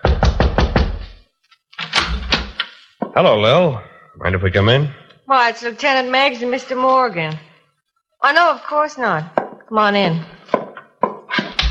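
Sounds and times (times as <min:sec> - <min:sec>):
knocking on an apartment door: 0:00.0 - 0:01.2, 0:10.5 - 0:11.6
speech: 0:03.2 - 0:07.5, 0:08.2 - 0:10.3.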